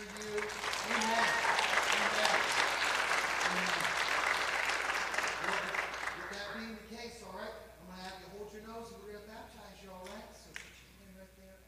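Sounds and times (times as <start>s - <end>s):
crowd at a water baptism applauding: 0.0s - 6.7s.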